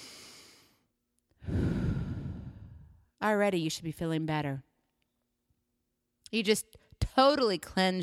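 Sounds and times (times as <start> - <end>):
deep breath drawn in softly: 0.0 - 0.8, 1.4 - 3.1
speech: 3.2 - 4.7, 6.3 - 8.0.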